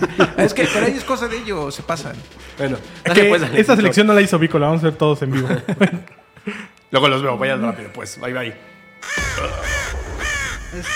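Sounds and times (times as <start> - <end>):
laughter: 0.0 - 2.1, 5.2 - 6.7
speech: 0.0 - 10.9
crow cawing: 9.0 - 10.9.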